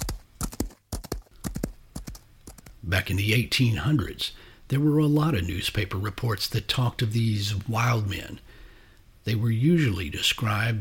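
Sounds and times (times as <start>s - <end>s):
hooves of a galloping horse: 0.0s - 3.3s
speech: 2.9s - 8.6s, 9.2s - 10.7s.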